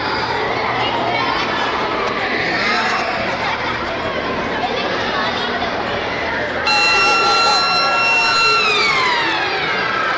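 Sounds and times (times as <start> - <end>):
many children chattering and shouting in a schoolyard in the Basque Country: 0.0 - 10.1
electronic school siren with steady high tones: 6.7 - 10.1.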